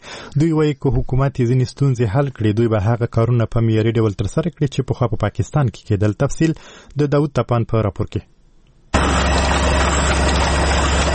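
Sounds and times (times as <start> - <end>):
speech: 0.4 - 8.3
printing press running while printing pages of a small book in Afghanistan: 9.0 - 11.1.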